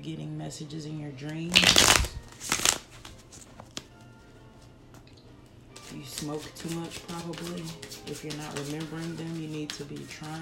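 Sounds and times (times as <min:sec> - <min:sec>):
speech: 0:00.0 - 0:02.7, 0:05.9 - 0:10.4
deck of cards being shuffled: 0:01.4 - 0:04.0, 0:05.8 - 0:10.4.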